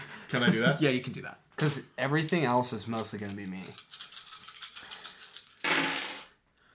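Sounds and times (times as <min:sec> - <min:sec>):
speech: 0:00.3 - 0:03.9
dice rattling and tumbling out: 0:01.6 - 0:06.4.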